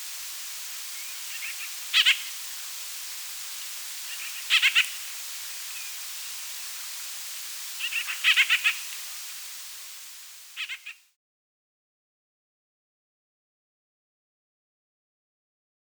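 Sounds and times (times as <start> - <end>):
quiet hiss: 0.0 - 11.2
White-winged grosbeak calls: 0.9 - 2.4, 3.6 - 7.2, 7.8 - 9.0, 10.6 - 11.0.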